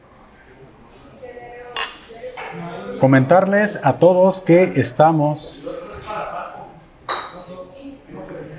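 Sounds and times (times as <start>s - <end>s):
low murmur of chatter in a brewery bar: 0.0s - 8.5s
speech: 2.6s - 5.8s
glasses clinking together in a toast in a brewery bar: 7.1s - 7.5s.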